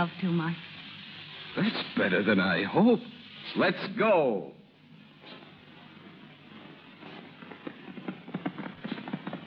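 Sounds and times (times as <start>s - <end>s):
speech: 0.0s - 0.7s, 1.6s - 4.6s
horse hooves galloping on a ranch: 6.1s - 9.4s.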